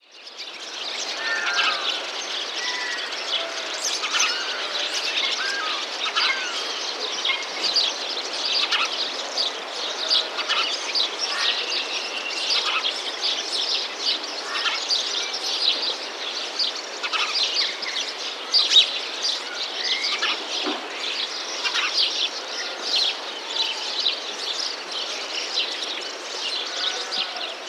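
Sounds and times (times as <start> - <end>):
birds: 0.0 - 27.6.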